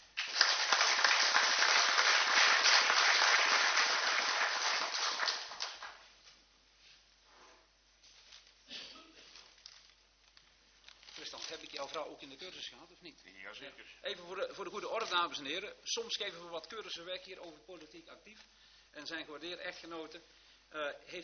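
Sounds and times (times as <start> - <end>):
audience applause: 0.0 - 6.0
speech: 11.9 - 21.2.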